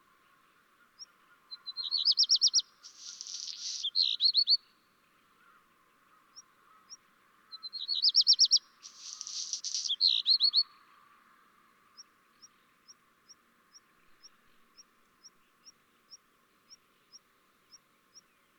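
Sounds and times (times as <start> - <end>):
black redstart singing: 2.0 - 4.3, 8.1 - 10.6.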